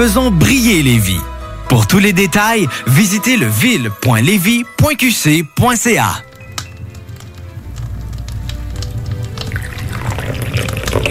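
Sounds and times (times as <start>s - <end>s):
speech: 0.0s - 6.3s
fizzy drink being poured: 6.3s - 11.0s.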